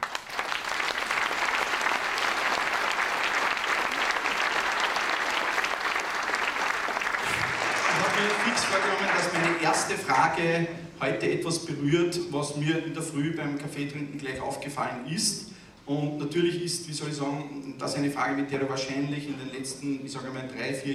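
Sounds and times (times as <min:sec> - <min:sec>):
sustained audience applause: 0:00.0 - 0:10.0
speech: 0:09.9 - 0:20.9.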